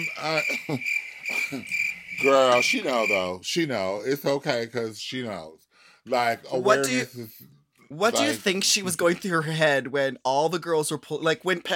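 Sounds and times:
cricket chirping sound effect: 0.0s - 3.4s
speech: 0.0s - 11.7s.

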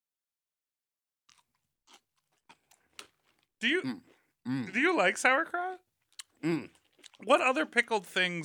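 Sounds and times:
person biting into and chewing crunchy food: 1.3s - 5.4s, 6.1s - 8.2s
person murmuring: 3.6s - 5.2s, 6.4s - 7.4s
speech: 3.6s - 8.4s.

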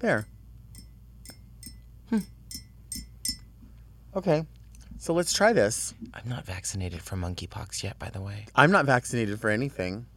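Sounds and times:
speech: 0.0s - 0.3s, 2.1s - 2.4s, 4.2s - 10.1s
spoon stirring a drink in a glass: 0.0s - 3.5s.

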